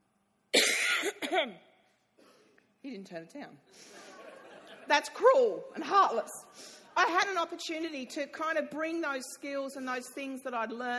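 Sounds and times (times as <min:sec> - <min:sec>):
person coughing: 0:00.6 - 0:01.6
speech: 0:01.3 - 0:01.7, 0:02.8 - 0:04.0, 0:04.9 - 0:10.9
laughter: 0:03.9 - 0:05.9.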